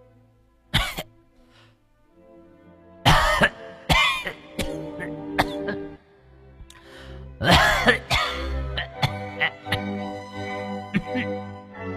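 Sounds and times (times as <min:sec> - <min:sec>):
mother-in-law coughing hard in the inner room: 0:00.8 - 0:01.1, 0:03.1 - 0:05.9, 0:07.4 - 0:09.9, 0:10.9 - 0:11.4.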